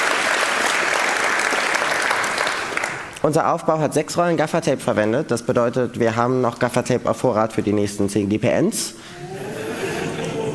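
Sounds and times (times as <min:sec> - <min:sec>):
audience applause at a hacker community event: 0:00.0 - 0:03.1
speech: 0:03.2 - 0:09.4
laughter: 0:09.1 - 0:10.5.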